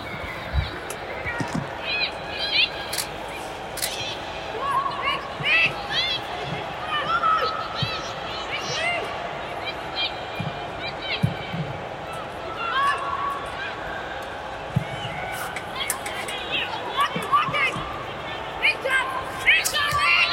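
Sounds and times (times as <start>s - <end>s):
faint low fake crowd noise pumped into the stadium: 0.0s - 20.3s
players shouting in an empty stadium: 0.0s - 20.3s.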